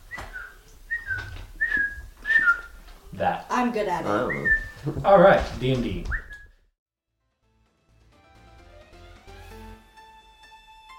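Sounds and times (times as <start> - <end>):
person whistling an imitation of a bird call: 0.1 - 2.8, 4.2 - 4.9, 6.1 - 6.5
speech: 3.2 - 6.2.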